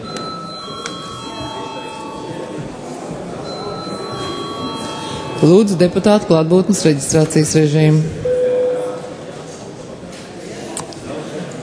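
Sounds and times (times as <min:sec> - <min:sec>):
parliament session bell ringing for break: 0:00.0 - 0:02.6, 0:03.4 - 0:05.8
low murmur and rustle of a large hall: 0:00.0 - 0:11.6
speech: 0:05.4 - 0:08.3.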